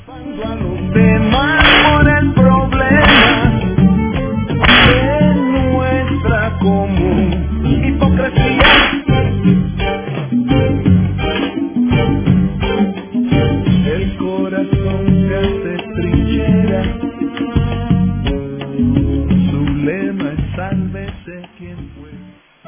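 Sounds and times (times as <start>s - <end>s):
dense loud music bed: 0.0s - 22.6s
speech: 0.1s - 1.6s
whip cracks: 1.6s - 2.0s, 3.0s - 3.5s, 4.6s - 5.1s, 8.6s - 9.1s.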